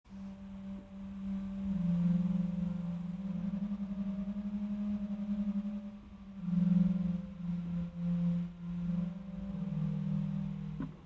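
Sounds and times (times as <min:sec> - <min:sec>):
organ playing with Bordun 16 8 4 stops: 0:01.2 - 0:11.0.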